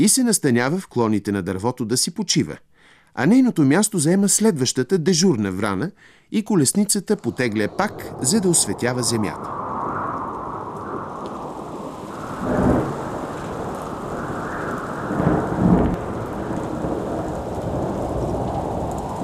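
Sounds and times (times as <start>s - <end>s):
speech: 0.0s - 9.8s
steady dense rain hissing in a thunderstorm: 6.5s - 19.2s
deep rumbles of thunder: 7.3s - 19.2s.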